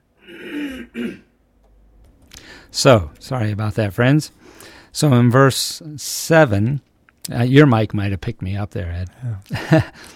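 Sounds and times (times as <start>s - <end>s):
person clearing throat: 0.2s - 1.4s
speech: 2.8s - 10.1s.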